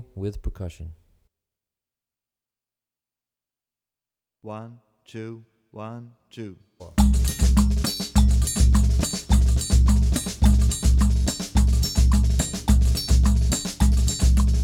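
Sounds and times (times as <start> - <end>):
Brazilian baiao rhythm on drum kit: 7.0 - 14.6.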